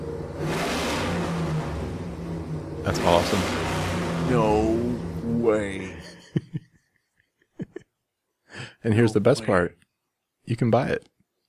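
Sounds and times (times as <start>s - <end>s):
big-block motorcycle engine revving: 0.0s - 6.0s
speech: 2.8s - 3.7s, 4.3s - 6.5s, 8.8s - 9.8s, 10.5s - 11.1s
laughter: 5.8s - 7.9s.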